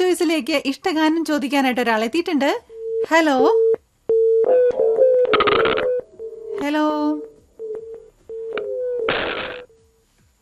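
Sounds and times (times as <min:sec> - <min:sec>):
speech: 0:00.1 - 0:03.7, 0:06.6 - 0:07.3
steady mid-pitched telephone tone after a dropped call: 0:02.8 - 0:10.0
noisy burst on a telephone line: 0:09.1 - 0:09.8.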